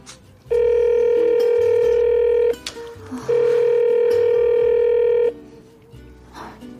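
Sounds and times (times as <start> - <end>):
phone ringback tone: 0.5 - 2.6, 3.3 - 5.4.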